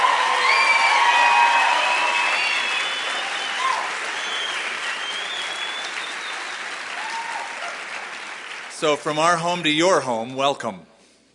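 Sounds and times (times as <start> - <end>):
whoops and cheers from a congregation: 0.0 - 7.9
congregation applauding: 0.0 - 9.4
speech: 8.8 - 10.9.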